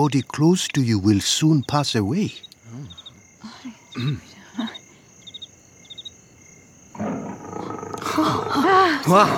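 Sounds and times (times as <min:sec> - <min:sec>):
speech: 0:00.0 - 0:02.9, 0:03.6 - 0:04.8, 0:08.2 - 0:09.3
crickets chirping: 0:00.0 - 0:09.3
lion roaring: 0:06.9 - 0:09.3.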